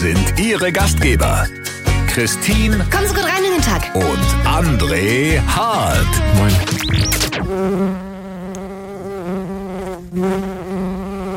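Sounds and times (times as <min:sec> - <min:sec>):
speech: 0:00.0 - 0:08.1, 0:10.1 - 0:10.8
bee buzzing: 0:03.8 - 0:11.3.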